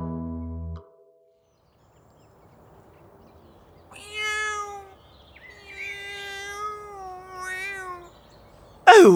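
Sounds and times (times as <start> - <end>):
cat stuck in a tree meowing: 3.5 - 8.8.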